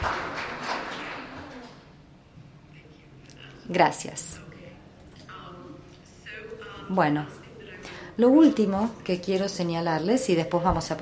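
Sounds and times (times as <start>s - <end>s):
audience applause: 0.0s - 1.8s
speech: 3.7s - 4.4s, 6.9s - 7.4s, 8.2s - 11.0s.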